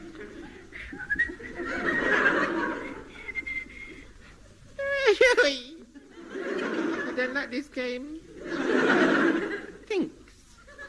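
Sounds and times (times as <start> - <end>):
laughter: 0.0 - 7.6, 8.3 - 9.9, 10.5 - 10.8
Boy Scout whistling a merry tune: 0.9 - 1.4, 3.3 - 3.9
speech: 7.4 - 9.1.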